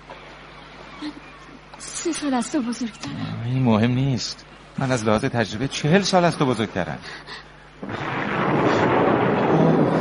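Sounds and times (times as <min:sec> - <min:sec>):
speech: 0:01.0 - 0:08.1
thunder rumbling during a storm: 0:07.8 - 0:09.9.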